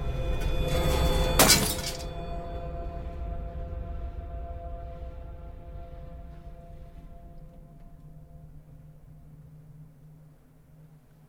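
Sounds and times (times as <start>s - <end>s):
steady low hum: 0.0s - 11.2s
mirror glass shattering from a headbutt: 1.0s - 2.1s.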